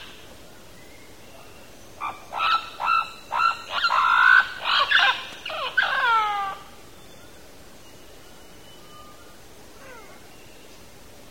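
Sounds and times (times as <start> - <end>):
Mealy parrot calling in Belize: 2.0 - 6.7.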